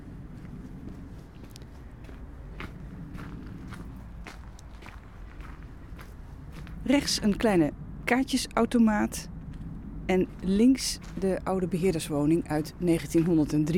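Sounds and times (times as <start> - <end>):
faint footsteps walking through a gate into a pinetum: 0.0 - 7.8, 9.3 - 12.4
speech: 6.9 - 9.3, 10.1 - 13.7.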